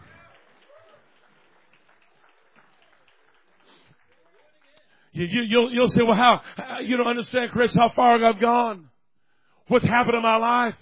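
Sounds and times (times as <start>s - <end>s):
large group clapping: 0.0s - 5.1s
speech: 5.2s - 8.9s, 9.7s - 10.7s.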